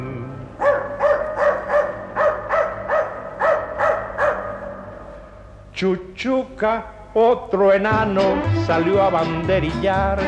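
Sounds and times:
faint hum: 0:00.0 - 0:08.0
dog barking: 0:00.6 - 0:05.4
speech: 0:05.8 - 0:10.2.

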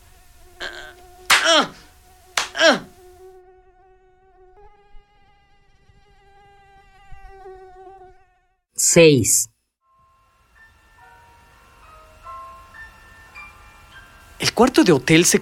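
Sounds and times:
thin whine of mosquitoes buzzing at night: 0:00.0 - 0:08.7, 0:10.0 - 0:15.4
speech: 0:08.9 - 0:09.5, 0:14.6 - 0:15.4.

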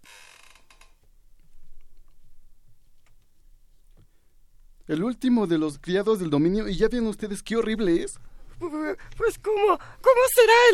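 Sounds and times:
door creaking slowly shut: 0:00.0 - 0:01.0
speech: 0:04.9 - 0:10.7.

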